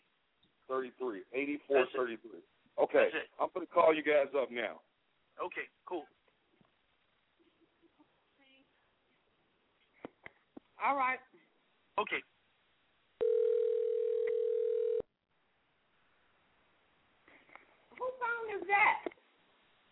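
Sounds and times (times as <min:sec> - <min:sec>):
people talking: 0:00.7 - 0:04.8, 0:18.0 - 0:19.1
telephone dial tone while a call is placed: 0:13.2 - 0:15.1.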